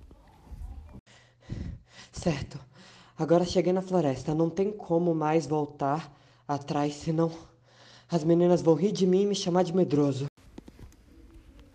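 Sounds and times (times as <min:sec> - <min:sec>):
person panting heavily out of breath: 0:01.0 - 0:03.2
speech: 0:02.2 - 0:07.5, 0:08.1 - 0:10.3.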